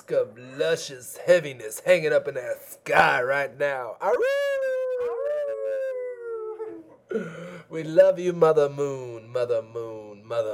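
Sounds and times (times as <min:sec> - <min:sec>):
speech: 0:00.1 - 0:04.5, 0:07.1 - 0:10.5
voice howling like a wolf at the moon: 0:04.6 - 0:06.9.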